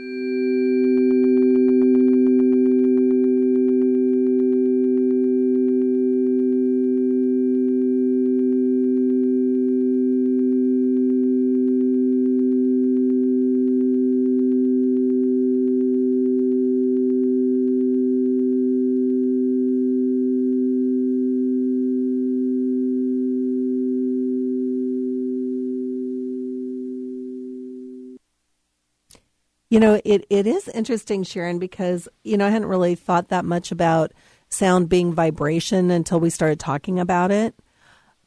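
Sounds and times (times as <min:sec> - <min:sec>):
tuning fork ringing: 0:00.0 - 0:28.2
speech: 0:29.7 - 0:37.6.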